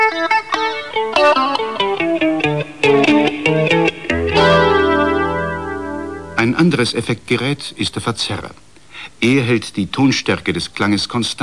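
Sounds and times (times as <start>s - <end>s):
electric guitar with flanger and artificial reverb: 0.0s - 6.5s
speech: 6.8s - 11.4s.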